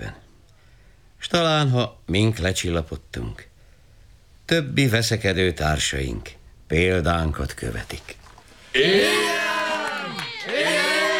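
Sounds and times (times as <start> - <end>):
speech: 1.3 - 3.5, 4.5 - 9.5
crowd cheering and shouting hurrah: 8.8 - 11.1.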